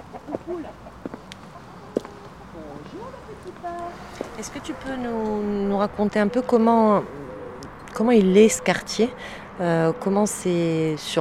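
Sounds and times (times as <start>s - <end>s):
hens clucking: 0.0s - 7.8s
speech: 3.4s - 7.2s, 8.0s - 11.1s.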